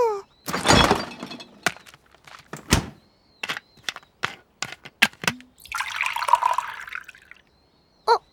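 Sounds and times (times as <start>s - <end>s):
sharp clicks and knocks: 0.5s - 5.6s
tea poured from a plastic bottle into a cup: 5.6s - 7.4s.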